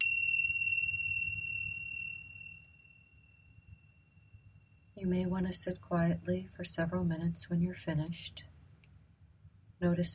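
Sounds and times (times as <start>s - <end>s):
meditation timer chime: 0.0s - 3.9s
speech: 5.0s - 8.5s, 9.8s - 10.1s.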